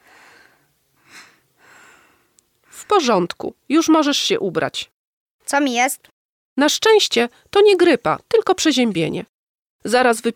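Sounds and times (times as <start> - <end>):
loud deliberate breathing for stethoscope examination: 0.0 - 2.8
speech: 2.9 - 10.3.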